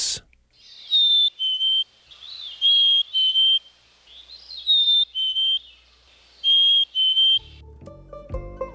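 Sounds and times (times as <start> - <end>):
Black-capped Chickadee clear whistled courtship song: 0.7 - 5.8, 6.4 - 7.6.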